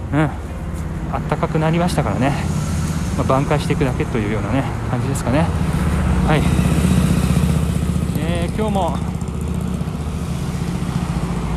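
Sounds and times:
motorcycle engine among passing cars: 0.0s - 11.5s
road traffic rumble with cars and motorcycles: 0.0s - 11.5s
speech: 0.1s - 0.5s, 1.1s - 2.6s, 3.2s - 6.9s, 8.4s - 9.2s.

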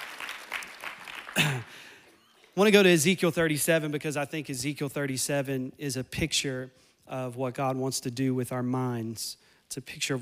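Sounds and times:
crowd applauding: 0.0s - 2.6s
speech: 2.6s - 10.2s.

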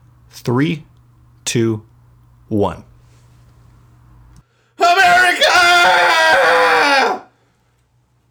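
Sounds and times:
speech: 0.3s - 0.9s, 1.5s - 1.9s, 2.5s - 2.9s
cathartic human scream: 4.8s - 7.3s.

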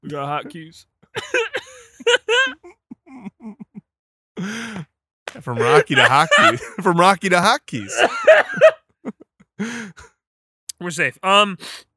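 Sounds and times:
speech: 0.1s - 2.6s, 4.4s - 8.6s, 10.9s - 11.9s
laughter: 0.1s - 4.6s, 5.3s - 9.3s
person coughing throatily: 5.6s - 6.8s, 7.8s - 8.6s.

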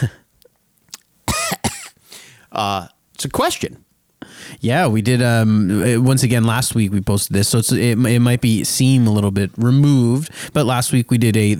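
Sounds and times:
person coughing: 1.3s - 2.0s
speech: 2.6s - 11.5s.

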